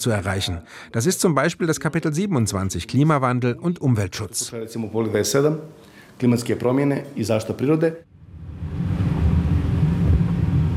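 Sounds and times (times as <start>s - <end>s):
speech: 0.0s - 8.1s
car driving through a mountain town in northern Montenegro: 8.2s - 10.7s.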